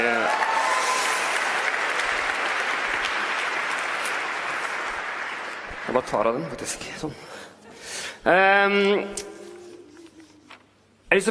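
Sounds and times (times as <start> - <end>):
audience applause: 0.0 - 6.8
speech: 5.9 - 7.5, 8.2 - 9.3.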